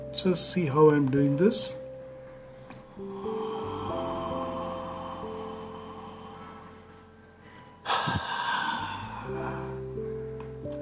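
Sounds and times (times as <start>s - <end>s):
gentle music: 0.0s - 10.8s
speech: 0.2s - 1.8s
deep breath in: 2.7s - 7.2s, 7.8s - 9.8s
big sigh of exhaled breath: 2.9s - 7.1s, 7.8s - 9.8s.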